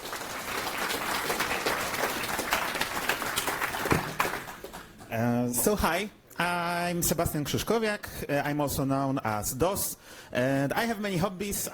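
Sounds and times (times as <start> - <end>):
audience applause: 0.0 - 5.0
speech: 5.2 - 11.7.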